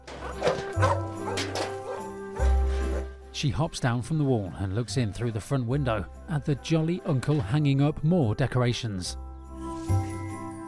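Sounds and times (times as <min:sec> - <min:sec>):
dog barking: 0:00.1 - 0:03.1
speech: 0:03.4 - 0:09.2.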